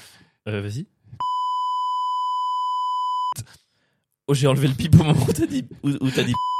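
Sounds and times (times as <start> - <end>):
speech: 0.5 - 1.2, 4.3 - 6.5
steady loud censor bleep tone at a single pitch: 1.2 - 3.4.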